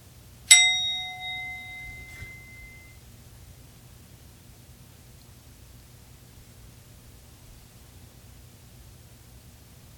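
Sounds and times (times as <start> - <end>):
meditation bell struck and ringing: 0.5 - 3.0.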